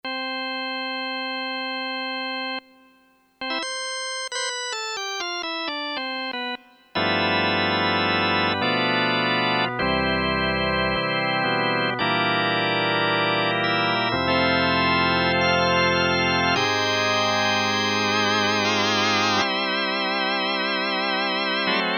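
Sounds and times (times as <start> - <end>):
synthesizer organ with created waveforms: 0.1 - 2.8, 3.4 - 21.9.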